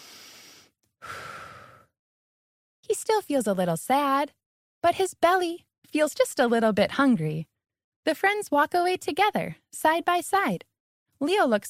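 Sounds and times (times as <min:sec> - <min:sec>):
deep breath: 0:00.0 - 0:02.0
speech: 0:02.9 - 0:11.6.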